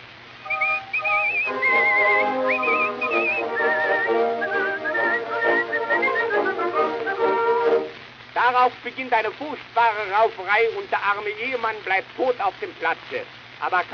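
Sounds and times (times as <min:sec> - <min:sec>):
loud agitated whistling: 0:00.4 - 0:07.8
steady tonal backing: 0:00.4 - 0:08.0
speech: 0:08.5 - 0:13.9.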